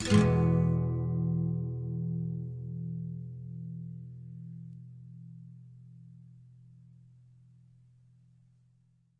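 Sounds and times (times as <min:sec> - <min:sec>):
E major chord on nylon string guitar: 0:00.0 - 0:06.4.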